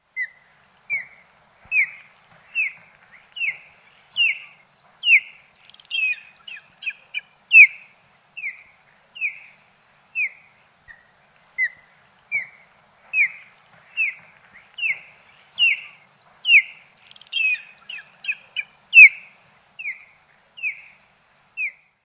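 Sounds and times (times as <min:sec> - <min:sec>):
osprey calling: 0:00.2 - 0:22.0.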